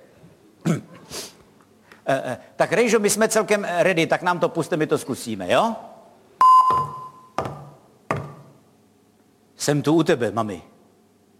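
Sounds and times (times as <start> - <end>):
person blowing nose: 1.0 - 1.4
speech: 2.1 - 5.9, 9.6 - 10.8.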